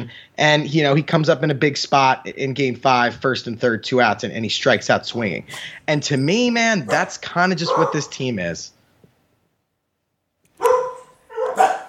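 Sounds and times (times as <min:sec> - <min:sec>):
speech: 0:00.1 - 0:08.8
dog barks: 0:06.9 - 0:08.1, 0:10.6 - 0:11.8.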